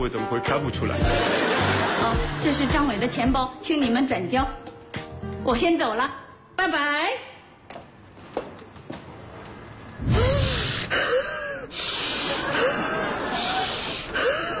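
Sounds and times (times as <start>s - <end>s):
speech: 0.0s - 4.7s, 5.5s - 7.3s, 10.1s - 11.2s
laughter: 1.1s - 2.8s, 10.9s - 14.5s
exaggerated deep breathing as a calming energy exercise: 10.0s - 14.5s.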